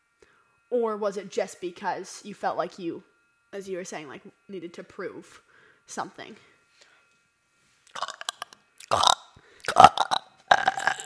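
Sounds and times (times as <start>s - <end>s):
speech: 0.7s - 6.5s
croaky burps: 7.9s - 11.0s.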